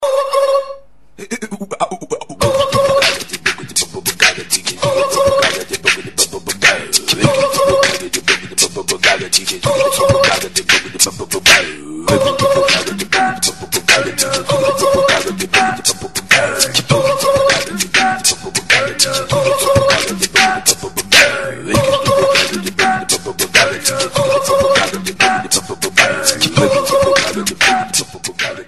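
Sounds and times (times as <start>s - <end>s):
beatbox ringtone: 0.0s - 28.6s.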